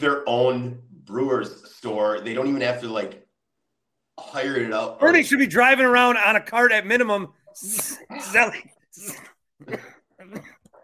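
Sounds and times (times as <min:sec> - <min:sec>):
speech: 0:00.0 - 0:03.2, 0:04.2 - 0:10.6
person coughing in harsh rasping bursts: 0:09.0 - 0:10.8.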